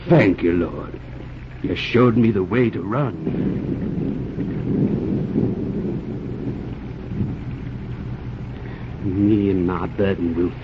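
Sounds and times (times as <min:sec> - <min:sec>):
heavy steady rain: 0:00.0 - 0:10.6
low sustained thunder rumbling: 0:00.0 - 0:10.6
speech: 0:00.1 - 0:04.5, 0:09.2 - 0:10.6.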